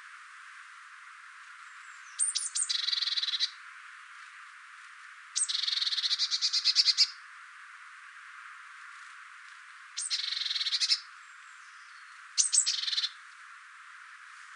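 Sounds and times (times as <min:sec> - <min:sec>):
soft background hiss: 0:00.0 - 0:14.5
Eurasian blue tit Cyanistes caeruleus scolding: 0:02.2 - 0:03.5, 0:05.4 - 0:07.1, 0:10.0 - 0:11.0, 0:12.4 - 0:13.2.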